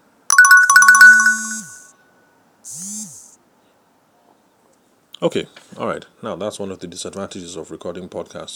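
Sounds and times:
electronic phone ringtone of an incoming call: 0.3 - 1.9
speech: 5.2 - 8.5.

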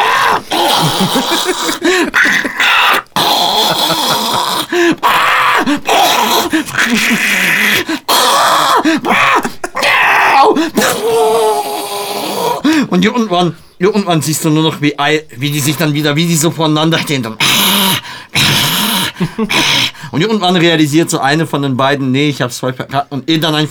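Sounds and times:
laughter: 0.0 - 8.0, 8.8 - 10.9
voice imitating two cats fighting: 0.0 - 12.8, 17.0 - 20.0
speech: 1.0 - 2.4, 13.0 - 18.3, 19.2 - 23.6.

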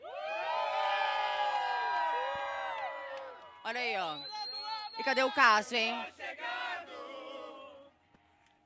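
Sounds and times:
large festival crowd cheering and shouting in a packed queue: 0.0 - 5.6
speech: 3.6 - 4.4, 5.0 - 6.6.

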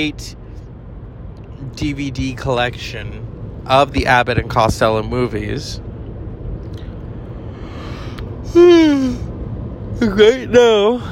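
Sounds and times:
speech: 0.0 - 0.4, 1.6 - 5.8, 10.0 - 11.0
voiced yawn with a breathy descending tone: 8.4 - 9.3.

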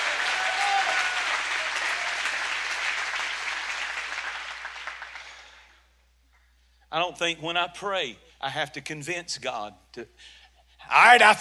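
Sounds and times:
audience at a religious service clapping: 0.0 - 5.7
speech: 6.9 - 11.3.

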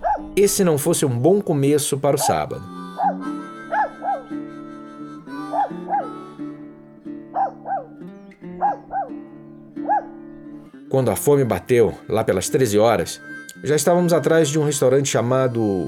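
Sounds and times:
small dog yapping with high-pitched barks in a yard: 0.0 - 0.4, 3.0 - 4.2, 7.3 - 8.0, 8.6 - 9.2, 9.8 - 10.2
low rumbling dog growl in a yard: 0.0 - 0.5, 7.3 - 8.0, 8.6 - 9.2, 9.8 - 10.2
speech: 0.4 - 2.8, 11.0 - 15.8.

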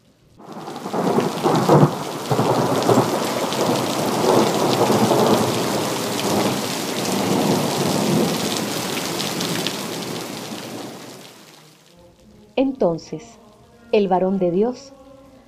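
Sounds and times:
heavy torrential rain pouring: 0.0 - 12.0
deep rolls of thunder rumbling: 0.4 - 11.2
speech: 12.8 - 15.0.

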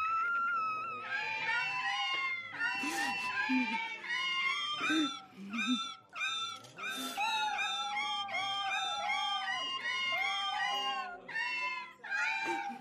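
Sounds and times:
several cats yowling and meowing in a cat organ: 0.0 - 12.7.

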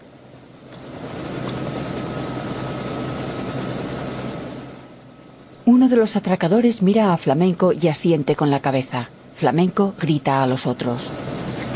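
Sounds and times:
helicopter engine left running on a waterlogged lawn: 0.0 - 11.7
speech: 5.7 - 11.7.

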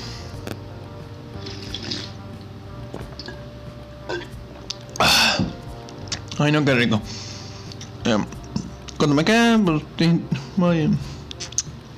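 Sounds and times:
low steady hum: 0.0 - 11.9
person drinking water with gulps and swallows: 1.4 - 2.2, 3.1 - 3.4
speech: 6.4 - 7.2, 8.1 - 8.4, 9.0 - 11.1.

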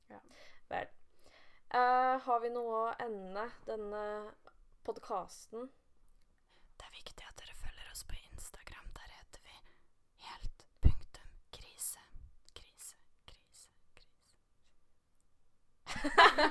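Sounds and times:
speech: 2.3 - 5.8
breathy ASMR whispering: 6.8 - 9.6, 10.2 - 14.4
laughter: 15.9 - 16.4.

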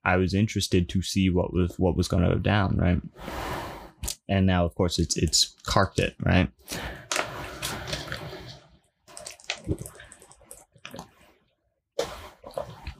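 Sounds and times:
speech: 0.0 - 7.0, 9.7 - 9.9
wet sipping and swallowing from a drink of water: 6.6 - 12.9.

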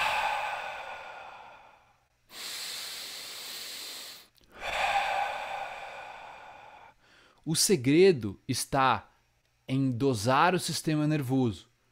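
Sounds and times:
forceful breathing during breathwork practice: 0.0 - 7.4
speech: 7.4 - 9.1, 9.7 - 11.7.

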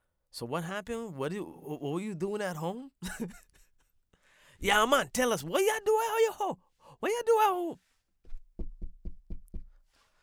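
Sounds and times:
speech: 0.4 - 3.5, 4.6 - 7.9
knocking on a door: 8.3 - 9.8.

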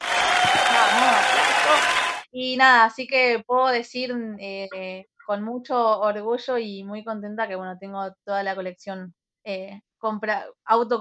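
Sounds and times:
crowd clapping: 0.0 - 2.3
speech: 2.4 - 10.9.

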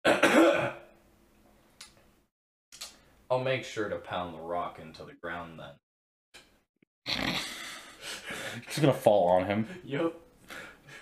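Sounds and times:
loud harsh raspy throat clearing: 0.0 - 1.0, 7.1 - 7.7
speech: 3.3 - 5.9, 8.6 - 11.0.

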